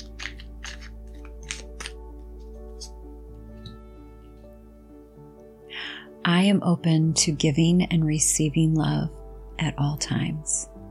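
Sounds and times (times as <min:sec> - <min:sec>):
deck of cards being shuffled: 0:00.0 - 0:03.0
speech: 0:06.4 - 0:10.7.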